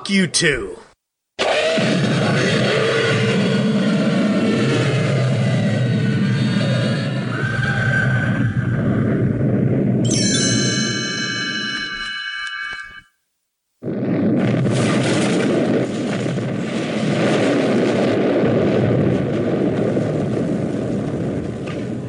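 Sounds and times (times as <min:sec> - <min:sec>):
speech: 0:00.1 - 0:00.8, 0:01.8 - 0:02.5
dynamite explosions roaring: 0:01.4 - 0:10.0, 0:13.8 - 0:22.0
brief tonal hum: 0:05.7 - 0:13.2.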